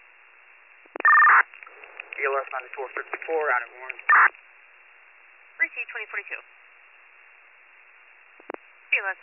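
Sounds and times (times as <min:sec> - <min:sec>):
faint telephone line noise: 0:00.0 - 0:09.0
telephone keypad tones over a narrow radio-band line: 0:01.0 - 0:01.4
speech: 0:02.2 - 0:04.4, 0:05.6 - 0:06.6, 0:09.0 - 0:09.2.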